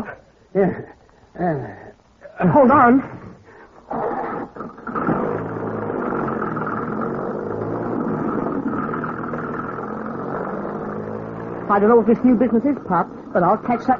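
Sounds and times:
speech: 0.0 - 3.2, 11.7 - 13.9
car engine starting and accelerating away: 5.0 - 12.5.

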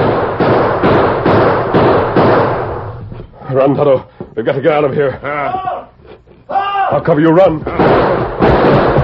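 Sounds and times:
gunshots fired by a sheriff toward men across a street: 0.0 - 3.0, 7.6 - 9.0
speech: 3.5 - 5.8, 6.9 - 9.0.

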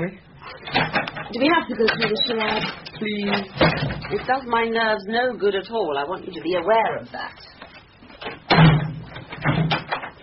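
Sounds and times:
speech: 0.0 - 7.6
cabinet door shutting during a stage magic routine: 8.5 - 10.0.

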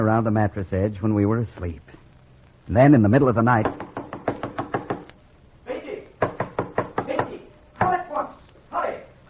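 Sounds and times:
speech: 0.0 - 2.0, 2.7 - 3.8
sharp knocks on a door: 3.6 - 5.1, 6.2 - 8.0.

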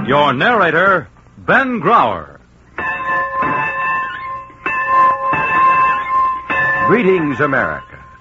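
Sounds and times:
speech: 0.1 - 2.4, 6.9 - 8.0
farm bell ringing: 2.8 - 8.2.

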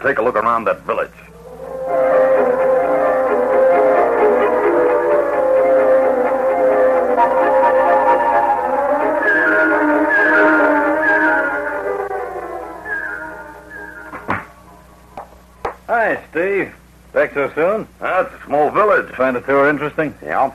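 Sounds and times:
speech: 0.0 - 1.3, 16.4 - 20.5
car engine humming with whining drone while driving: 1.2 - 15.9.

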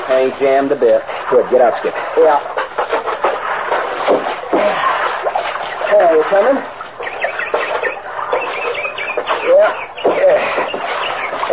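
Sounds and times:
hissy noise: 0.0 - 11.5
speech: 0.2 - 2.6, 5.9 - 6.8
bird singing: 5.5 - 11.5.

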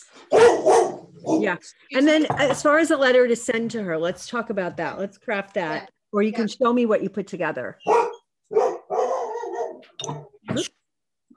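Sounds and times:
dog barking excitedly: 0.3 - 1.6, 7.8 - 10.0
speech: 1.4 - 8.0, 10.0 - 10.7.

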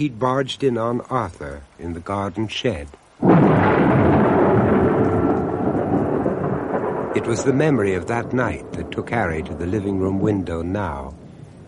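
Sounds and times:
speech: 0.0 - 4.0, 7.2 - 11.2
heavy rain: 0.0 - 11.6
deep rolling thunder: 3.2 - 11.6.

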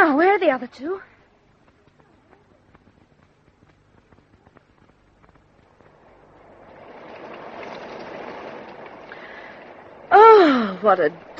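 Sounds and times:
scattered crackling drops: 0.0 - 11.3
steady hiss of rain or running water: 0.0 - 11.3
speech: 0.5 - 1.2, 10.8 - 11.3.

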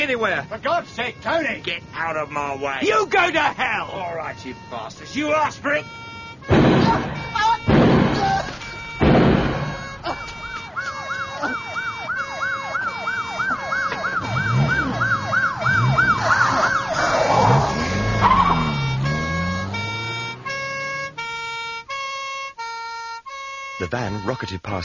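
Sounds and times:
speech: 0.0 - 7.5, 23.9 - 24.8
police car engine rumble: 0.0 - 22.6
police car siren wailing: 0.0 - 24.6
sharp loud bangs: 6.4 - 10.5.

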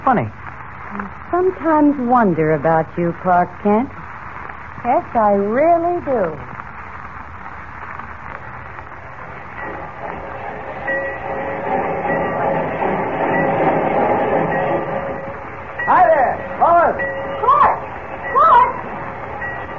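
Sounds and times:
train rumbling at a station: 0.0 - 19.7
speech: 0.1 - 4.0, 4.8 - 6.5
loud wavering train squeals: 9.5 - 19.7.

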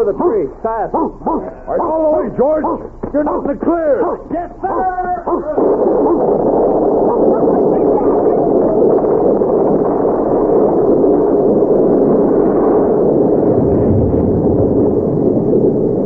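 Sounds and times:
speech: 0.0 - 6.5
dog barking: 0.9 - 6.3, 7.0 - 7.5
loud steady rush of wind or storm noise: 0.9 - 16.0
dog whimpering: 1.0 - 3.5, 5.2 - 6.3.

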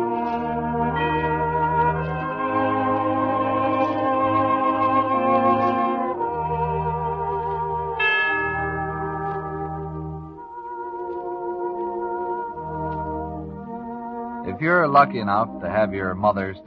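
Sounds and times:
lush strings: 0.0 - 16.6
sustained organ chords: 0.0 - 16.6
bright chimes in a slow melody: 8.0 - 10.4
speech: 14.6 - 16.6.

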